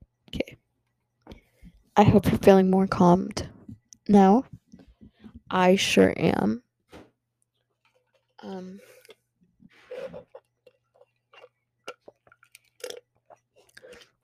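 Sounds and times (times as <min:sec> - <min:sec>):
speech: 0:02.0 - 0:03.4, 0:04.1 - 0:04.5, 0:05.5 - 0:06.6, 0:08.4 - 0:08.9
sipping and swallowing water: 0:08.2 - 0:14.2.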